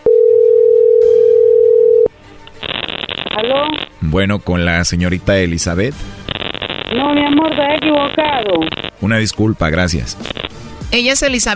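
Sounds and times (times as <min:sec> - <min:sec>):
telephone dial tone during redialed call: 0:00.0 - 0:02.1
rough crackly telephone line noise: 0:02.4 - 0:04.0, 0:06.2 - 0:09.5, 0:10.2 - 0:10.6
speech: 0:03.4 - 0:06.2, 0:06.9 - 0:11.5.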